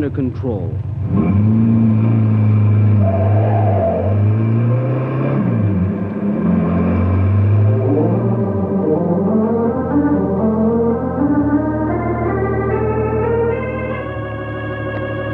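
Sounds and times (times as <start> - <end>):
speech: 0.0 - 2.0
car engine revving and speeding away: 0.0 - 15.3.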